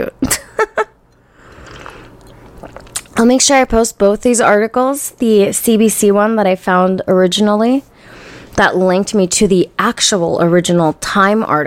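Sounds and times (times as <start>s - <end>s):
speech: 0.0s - 0.4s, 3.2s - 7.9s, 8.6s - 11.6s
slurp of a hot drink: 1.4s - 3.2s.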